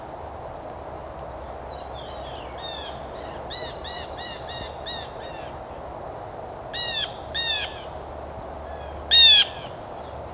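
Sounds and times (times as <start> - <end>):
steady background hiss: 0.0 - 10.3
Blue Jay giving harsh nasal scolding calls: 1.5 - 5.8, 6.5 - 8.0, 8.6 - 10.1.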